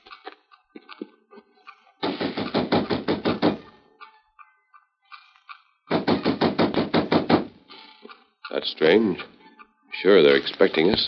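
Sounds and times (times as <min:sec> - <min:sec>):
rapid knocking on a wooden side door: 0:02.0 - 0:03.6, 0:05.9 - 0:07.5
speech: 0:08.6 - 0:09.4, 0:10.0 - 0:11.0.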